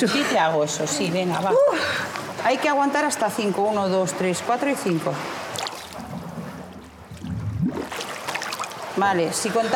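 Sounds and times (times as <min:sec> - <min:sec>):
speech: 0:00.0 - 0:05.4, 0:09.0 - 0:09.7
person blowing air out with head under water: 0:06.0 - 0:08.2.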